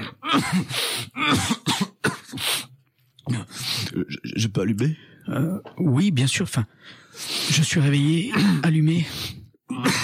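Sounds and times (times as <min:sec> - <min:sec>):
harsh wet coughs from someone with a heavy cold: 0:00.2 - 0:02.7, 0:08.2 - 0:08.8, 0:09.7 - 0:10.0
speech: 0:00.3 - 0:01.9, 0:04.4 - 0:10.0.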